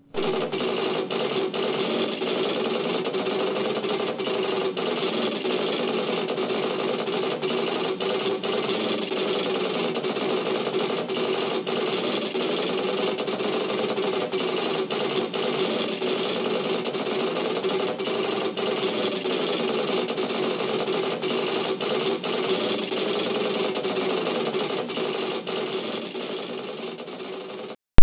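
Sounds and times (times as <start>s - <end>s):
library computer: 0.0s - 28.0s.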